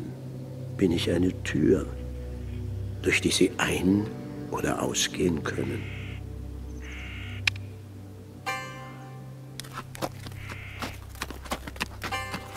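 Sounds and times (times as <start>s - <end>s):
speech: 0.8s - 2.0s, 3.0s - 6.0s
crows cawing: 5.5s - 7.5s, 9.7s - 12.5s
donkey hooves plodding beneath trees: 9.6s - 12.5s.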